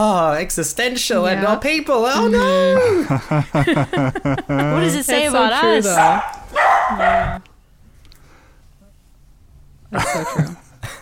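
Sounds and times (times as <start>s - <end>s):
speech: 0.0s - 7.5s, 9.9s - 10.6s
laughter: 2.2s - 6.0s, 10.0s - 10.9s
dogs barking: 5.8s - 7.4s.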